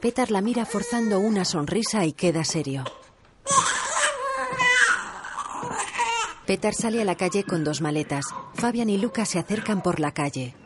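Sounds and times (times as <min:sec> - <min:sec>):
speech: 0:00.0 - 0:03.6, 0:06.5 - 0:10.6
infant wailing: 0:03.4 - 0:06.4.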